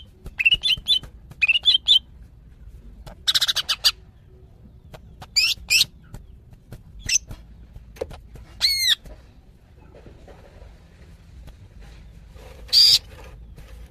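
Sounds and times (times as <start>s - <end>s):
female greater green leafbird calling a male: 0.0s - 2.1s, 3.2s - 7.4s, 8.6s - 9.1s, 12.7s - 13.2s.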